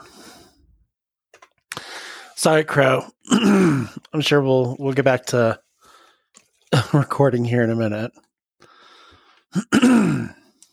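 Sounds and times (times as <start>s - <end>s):
speech: 2.4s - 5.6s, 6.9s - 8.2s, 9.5s - 10.4s
throat clearing: 9.6s - 10.4s.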